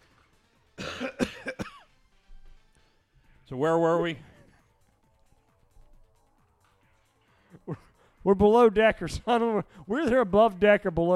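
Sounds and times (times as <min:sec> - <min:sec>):
harsh hacking coughing: 0:00.8 - 0:01.9
throat-clearing rasp: 0:00.8 - 0:01.9
speech: 0:03.5 - 0:04.3, 0:08.3 - 0:11.1.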